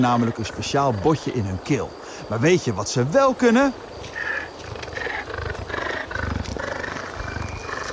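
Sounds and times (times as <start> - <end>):
speech: 0.0 - 4.3
cheetah purring: 4.2 - 7.9.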